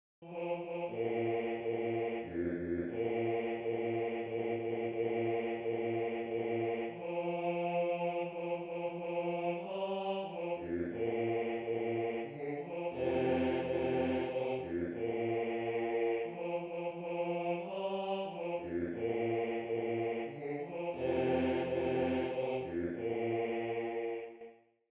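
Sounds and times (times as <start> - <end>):
male choir second bass voices singing: 0.2 - 24.4.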